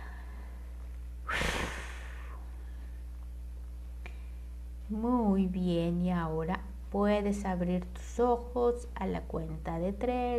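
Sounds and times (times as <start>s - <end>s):
breathy exhale through nose or mouth: 1.3s - 2.8s
speech: 4.9s - 10.3s.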